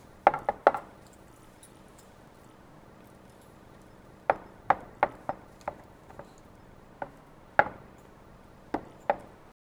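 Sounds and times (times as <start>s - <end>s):
hammering in woodworking: 0.0s - 9.6s
wood blocks stacking: 0.3s - 1.0s, 3.8s - 9.5s.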